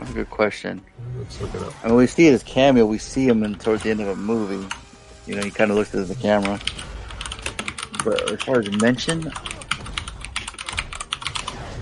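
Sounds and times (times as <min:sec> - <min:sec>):
speech: 0:00.2 - 0:06.9, 0:08.0 - 0:09.5
typing on a computer keyboard: 0:06.4 - 0:11.5.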